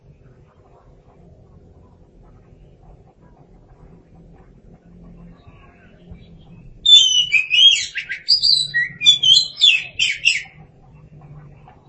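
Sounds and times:
soft low hum: 0.0 - 11.8
Oriental magpie-robin singing: 6.8 - 10.6.

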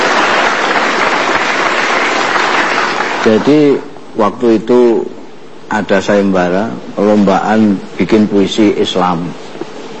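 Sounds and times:
audience applause at a live stage event: 0.0 - 3.7
speech: 3.2 - 9.4.

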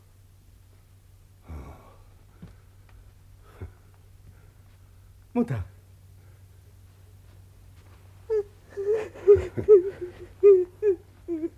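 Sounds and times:
speech: 5.4 - 5.7, 9.6 - 10.2
woman crying in short broken sobs and whimpers: 8.3 - 11.5.

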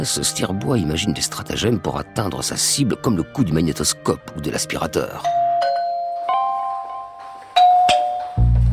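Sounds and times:
speech: 0.0 - 5.4
doorbell ringing at a front door with two chime tones: 5.2 - 8.6.

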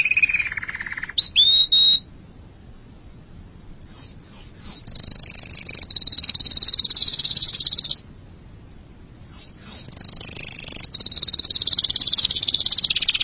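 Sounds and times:
canary trilling song: 0.0 - 2.1, 3.8 - 8.1, 9.2 - 13.2.

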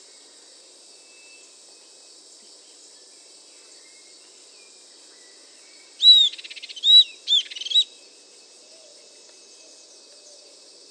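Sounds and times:
Southern antpipit Corythopis delalandi giving high arched whistles and pulsed notes: 6.0 - 7.9.

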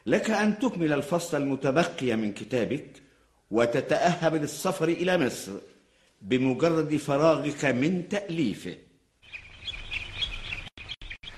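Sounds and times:
speech: 0.1 - 9.4
bird chirping: 9.2 - 11.3.

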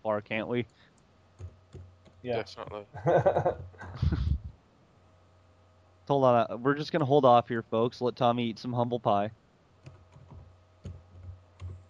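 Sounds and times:
steady low electrical hum: 0.0 - 11.8
speech: 0.1 - 1.0, 2.2 - 4.2, 6.1 - 9.4
laughter: 3.0 - 4.4
typing on a computer keyboard: 9.8 - 11.8.

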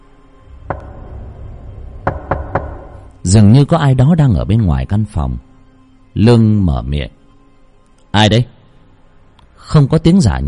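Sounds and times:
knocking on a room door at night: 0.6 - 3.2
speech: 3.3 - 5.5, 6.1 - 7.2, 8.2 - 8.6, 9.6 - 10.4.

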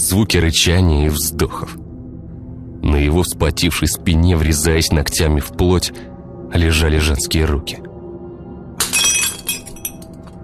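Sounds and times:
speech: 0.0 - 1.8, 2.9 - 7.9
scattered tinkling clinks of broken glass: 8.8 - 10.1
glass bottle filled with spirit slipping and shattering: 8.8 - 10.4.

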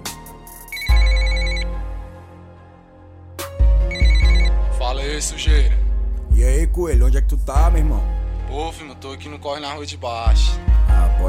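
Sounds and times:
phone ringing while calling someone: 0.7 - 1.8, 3.8 - 4.6
speech: 5.2 - 5.8, 6.4 - 11.2.

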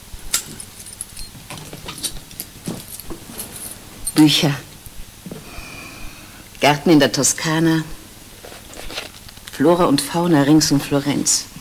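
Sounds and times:
keys jangling: 0.3 - 4.3
suitcase being unlocked and its lid opened: 0.5 - 5.5
speech: 4.2 - 4.7, 6.6 - 8.0, 9.6 - 11.5.

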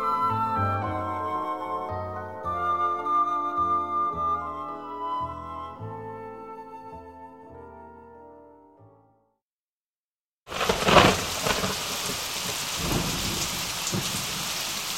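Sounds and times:
music: 0.0 - 9.4
thunder rumbling: 10.5 - 14.9
thunderstorm rain: 10.5 - 14.9.

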